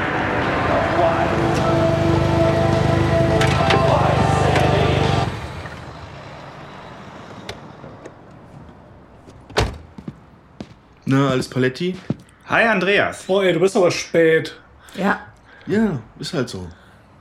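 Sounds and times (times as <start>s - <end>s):
vehicle arriving with sustained high squeal: 0.0s - 8.0s
sharp door-like thump: 9.5s - 10.1s
speech: 11.1s - 16.8s.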